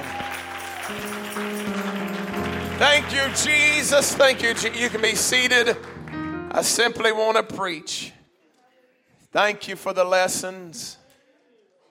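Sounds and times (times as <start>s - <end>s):
crowd clapping hands: 0.0s - 6.6s
sustained musical tones: 1.1s - 6.9s
speech: 2.8s - 6.0s, 6.6s - 8.2s, 9.3s - 11.0s.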